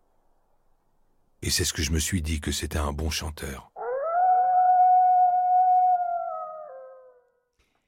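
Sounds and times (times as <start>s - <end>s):
speech: 1.5s - 3.7s
single wolf howling: 3.8s - 7.5s.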